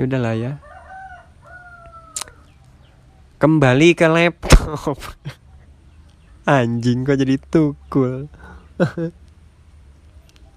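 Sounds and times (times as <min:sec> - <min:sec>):
speech: 0:00.0 - 0:00.7, 0:03.4 - 0:05.4, 0:06.4 - 0:09.2
rooster crowing: 0:00.4 - 0:02.6
laughter: 0:08.8 - 0:09.2.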